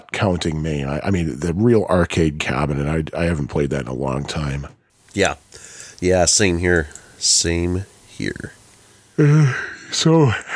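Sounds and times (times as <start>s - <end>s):
speech: 0.2s - 8.6s, 9.2s - 10.5s
sharp intake of breath: 5.0s - 6.0s, 7.8s - 9.9s
person yawning tiredly: 9.2s - 9.7s.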